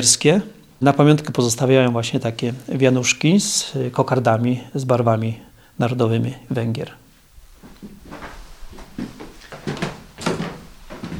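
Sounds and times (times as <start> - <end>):
speech: 0.0 - 7.0
wooden stairs creaking: 7.6 - 11.1.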